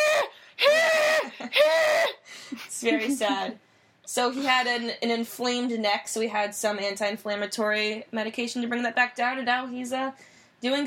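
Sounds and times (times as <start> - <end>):
voice imitating a dog's scream-like honk: 0.0 - 2.2
speech: 2.8 - 10.8.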